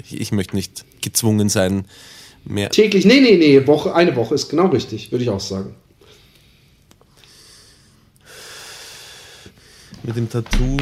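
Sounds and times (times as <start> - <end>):
speech: 0.0 - 5.8, 10.1 - 10.8
person inhaling a cigarette: 6.0 - 10.0.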